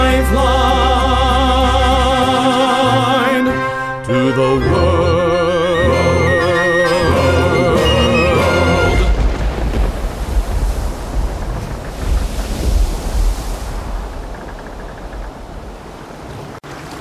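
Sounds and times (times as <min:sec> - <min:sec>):
music: 0:00.0 - 0:09.2
crashing waves on a stormy sea: 0:05.7 - 0:16.9
gusting wind over a stormy sea: 0:07.1 - 0:16.9.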